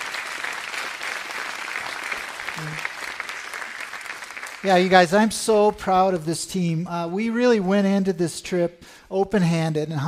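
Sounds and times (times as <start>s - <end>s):
audience applause: 0.0s - 5.6s
speech: 2.6s - 2.9s, 4.6s - 10.0s.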